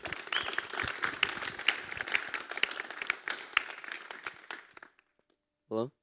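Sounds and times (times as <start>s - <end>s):
audience applause welcoming a person before being baptized: 0.0s - 5.1s
speech: 5.7s - 6.0s.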